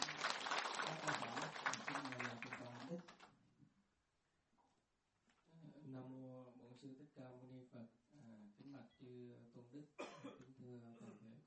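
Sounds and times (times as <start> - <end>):
audience applause: 0.0 - 3.3
speech: 2.9 - 3.2, 6.8 - 11.2.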